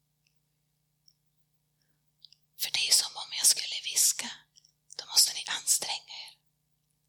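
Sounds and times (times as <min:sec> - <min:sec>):
person whispering: 0:02.6 - 0:06.4.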